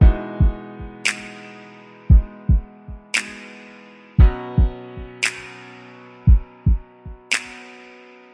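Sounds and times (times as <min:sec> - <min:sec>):
kick drum: 0:00.0 - 0:01.0, 0:02.1 - 0:03.1, 0:04.2 - 0:05.2, 0:06.3 - 0:07.3
piano: 0:00.0 - 0:08.3
finger snaps: 0:01.1 - 0:01.5, 0:03.2 - 0:03.6, 0:05.2 - 0:05.6, 0:07.3 - 0:07.9.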